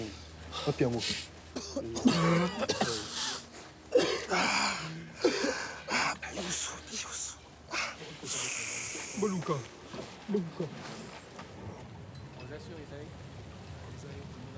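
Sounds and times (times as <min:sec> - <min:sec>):
speech: 0:00.6 - 0:03.1, 0:09.2 - 0:10.9
person coughing: 0:01.6 - 0:06.5
throat clearing: 0:01.6 - 0:06.5.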